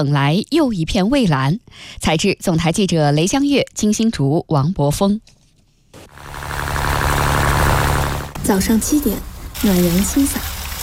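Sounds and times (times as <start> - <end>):
speech: 0.0 - 5.4, 8.5 - 10.8
boat motor droning in fishing harbor: 6.0 - 10.4.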